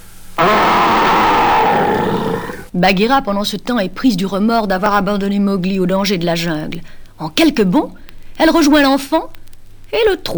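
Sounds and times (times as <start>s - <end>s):
voice imitating a big bear's terrible growl: 0.4s - 2.7s
speech: 2.8s - 10.3s.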